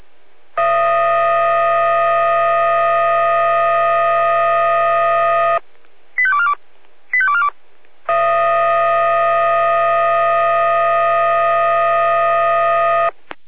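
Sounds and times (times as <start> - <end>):
fire brigade siren blasts: 0.5 - 5.6, 8.1 - 13.1
fire brigade warbling alert beeps over crackly radio in Jena Germany: 0.6 - 5.6, 8.1 - 13.1.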